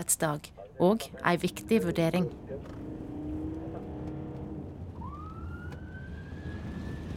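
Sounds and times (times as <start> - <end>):
speech: 0.0 - 2.8
engine and traffic rumble in Oslo Norway: 0.0 - 7.1
ambulance siren wailing while speeding through Sandaker and Torshov in Oslo Norway: 3.2 - 7.1.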